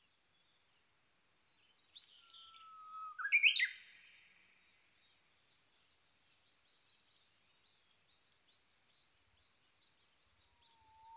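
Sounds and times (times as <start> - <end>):
Japanese bush warbler song: 1.9 - 4.3, 10.4 - 11.1.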